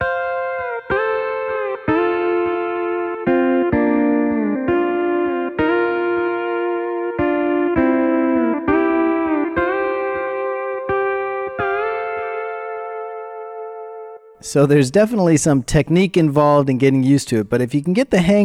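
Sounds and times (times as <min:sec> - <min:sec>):
pedal steel guitar played country style with pitch bend pedal: 0:00.0 - 0:14.4
speech: 0:14.5 - 0:18.4.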